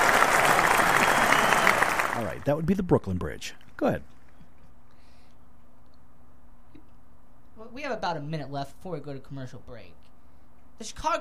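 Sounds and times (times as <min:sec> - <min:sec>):
dense applause from a crowd: 0:00.0 - 0:02.5
speech: 0:02.2 - 0:04.2, 0:07.7 - 0:10.0, 0:10.8 - 0:11.1.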